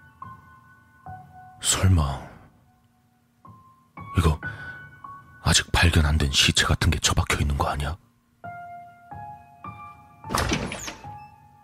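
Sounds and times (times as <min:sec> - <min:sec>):
speech: 0:01.6 - 0:02.3, 0:05.5 - 0:08.0
bathroom door opening with a muffled thunk and scrape: 0:10.2 - 0:11.4.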